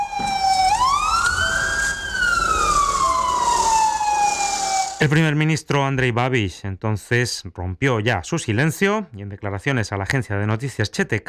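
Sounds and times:
steady road noise: 0:00.0 - 0:05.0
Fabia emergency car siren from a hospital wailing: 0:00.0 - 0:05.1
speech: 0:05.0 - 0:11.2.

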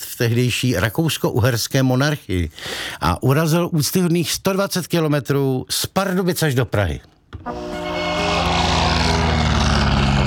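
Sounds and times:
speech: 0:00.2 - 0:07.7
Blériot XI vintage propeller plane piston engine starting: 0:07.8 - 0:10.2.

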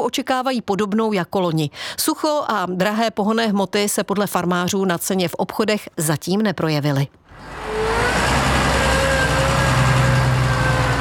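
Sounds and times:
speech: 0:00.0 - 0:07.7
tractor engine with potato harvester rumbling: 0:07.3 - 0:10.9.

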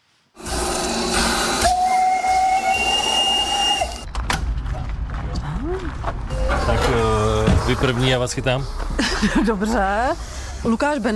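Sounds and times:
steam hissing from a historic steam locomotive: 0:00.4 - 0:04.0
rumbling mechanical noise of a steam locomotive: 0:00.4 - 0:11.1
historic steam locomotive whistle: 0:01.1 - 0:04.1
speech: 0:07.7 - 0:11.1
laughter: 0:09.0 - 0:09.8.

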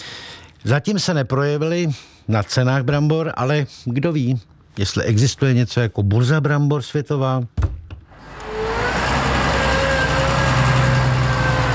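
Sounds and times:
speech: 0:00.6 - 0:07.7
heavy tractor engine pulling a potato harvester at a field near Hradištko: 0:08.0 - 0:11.7.

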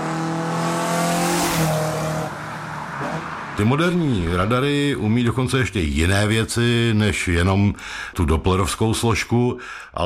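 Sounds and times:
race car roaring past at an automobile race: 0:00.0 - 0:03.8
speech: 0:03.6 - 0:10.0.

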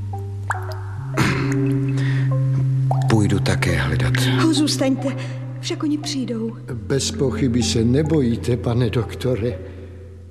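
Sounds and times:
water drops dripping in a dark cave: 0:00.1 - 0:06.7
speech: 0:03.1 - 0:09.7.

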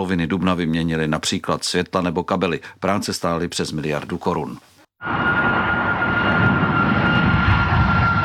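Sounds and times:
speech: 0:00.0 - 0:05.2
aircraft engine roar as a plane passes overhead at Prague Airport runway crossing: 0:05.0 - 0:08.2.

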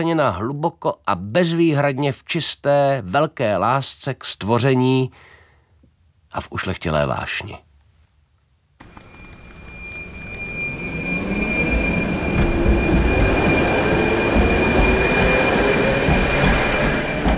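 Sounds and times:
speech: 0:00.0 - 0:05.3, 0:06.3 - 0:07.7
metal tram wheels squealing against the rails at a turning loop in Liberec: 0:08.8 - 0:17.3.

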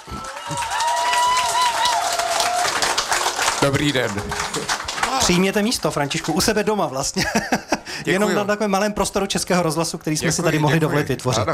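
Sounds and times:
audience applause welcoming a guest: 0:00.0 - 0:06.8
speech: 0:03.6 - 0:04.6, 0:05.3 - 0:11.5
laughter: 0:07.1 - 0:08.5.

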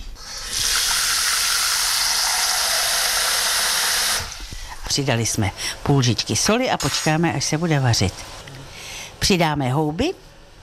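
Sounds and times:
water pouring into a pot: 0:00.2 - 0:04.4
speech: 0:05.0 - 0:08.4, 0:09.3 - 0:10.3.

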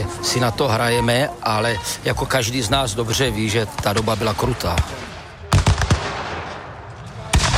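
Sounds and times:
speech: 0:00.1 - 0:05.1
gunfire at a battle reenactment on the battlefield at Chlum: 0:03.8 - 0:07.5
cannon salvos at a battle reenactment on the battlefield at Chlum: 0:05.5 - 0:07.5.

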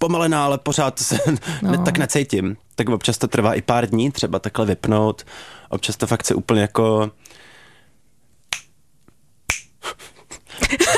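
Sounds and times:
speech: 0:00.0 - 0:07.3
finger snaps: 0:08.4 - 0:09.8.

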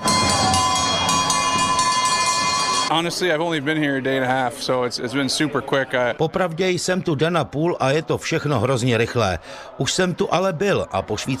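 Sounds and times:
many cowbells ringing in a hockey stadium: 0:00.0 - 0:03.1
noisy hockey stadium crowd: 0:00.0 - 0:11.3
speech: 0:02.9 - 0:11.3.

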